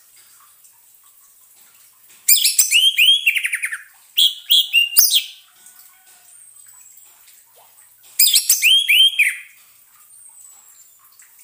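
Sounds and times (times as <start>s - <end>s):
orange-headed thrush chirps and whistled notes: 2.3s - 5.4s, 8.2s - 9.6s.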